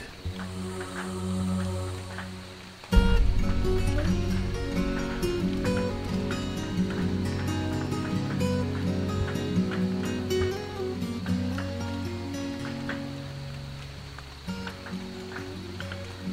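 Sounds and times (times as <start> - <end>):
sustained low humming tone: 0.0 - 10.3
gentle summer rain pattering: 0.0 - 16.3.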